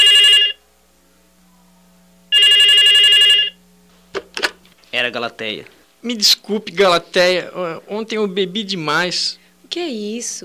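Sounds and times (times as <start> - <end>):
telephone ringing with a bright trilling bell: 0.0 - 0.6, 2.3 - 3.6
quiet hum: 0.0 - 10.4
speech: 5.0 - 10.4.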